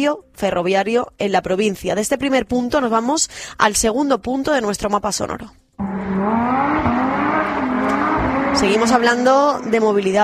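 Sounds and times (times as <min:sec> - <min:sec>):
speech: 0:00.0 - 0:07.1, 0:08.6 - 0:10.2
cars speeding in illegal street racing: 0:05.8 - 0:10.2.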